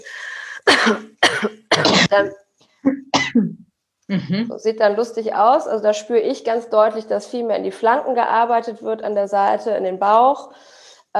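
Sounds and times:
person coughing into a fist: 0.6 - 2.3, 2.9 - 4.5
speech: 0.8 - 11.1
short throaty sounds: 1.1 - 4.5.

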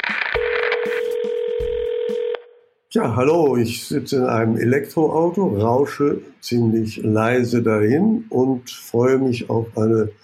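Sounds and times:
telephone dial tone: 0.4 - 2.5
speech: 2.9 - 10.2.

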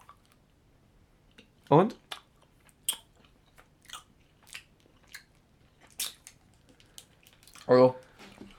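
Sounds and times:
biting and chewing a chocolate candy: 1.3 - 8.5
speech: 1.7 - 2.0, 7.7 - 8.0
crisp bites into a chocolate candy: 2.0 - 7.7.

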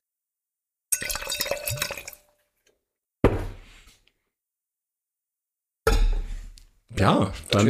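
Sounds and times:
drink being poured into glasses: 0.9 - 2.3
speech: 6.9 - 7.6.

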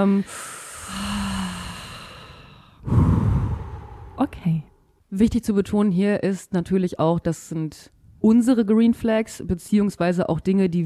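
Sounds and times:
speech: 0.0 - 1.2, 4.2 - 10.8
slow deep breath drawn in: 0.3 - 4.3.

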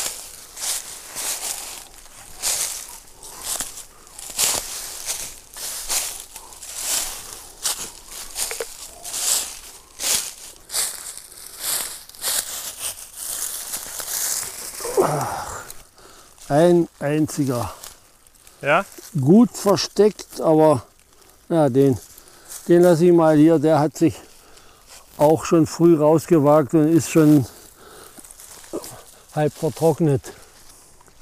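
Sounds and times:
footsteps crunching through dry fallen leaves: 0.0 - 31.2
speech: 16.5 - 17.8, 18.6 - 20.9, 21.5 - 22.1, 22.7 - 24.2, 25.2 - 27.6, 29.4 - 30.4.

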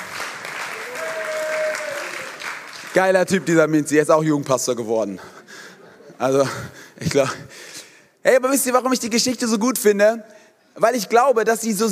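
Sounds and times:
audience applause: 0.0 - 3.6
speech: 3.0 - 5.4, 6.2 - 7.5, 8.2 - 11.8
laughter: 5.2 - 6.7.

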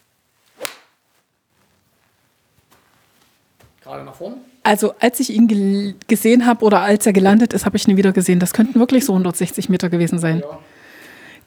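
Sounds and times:
golf iron striking a ball off the ground: 0.6 - 0.9
speech: 3.8 - 10.7.

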